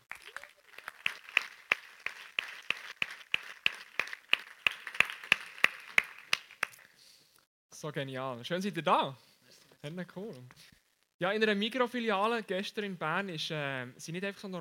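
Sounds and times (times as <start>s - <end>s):
audience applause welcoming guests on stage in Bern: 0.0s - 6.8s
speech: 7.8s - 14.6s.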